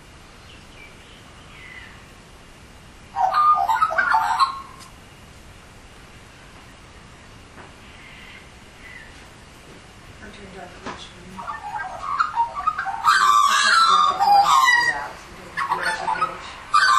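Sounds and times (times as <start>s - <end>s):
Australian magpie giving mellow gurgling warbles: 3.2s - 4.8s, 11.4s - 16.9s.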